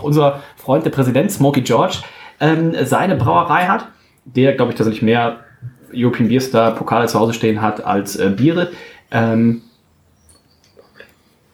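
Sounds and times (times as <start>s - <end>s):
speech: 0.0s - 9.7s
slightly hissy background: 0.0s - 11.5s
faint birds chirping: 3.8s - 11.5s.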